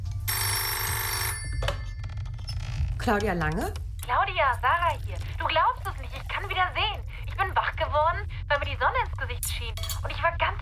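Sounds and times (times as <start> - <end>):
telephone ringing with a bright electronic trill: 0.1 - 2.4
speech: 3.1 - 10.6.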